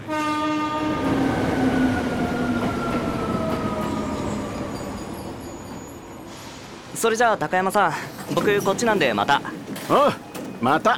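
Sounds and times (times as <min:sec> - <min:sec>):
train horn at a station platform: 0:00.0 - 0:01.2
rumble of train wheels pulling into a station platform: 0:00.0 - 0:10.9
speech: 0:07.0 - 0:10.9.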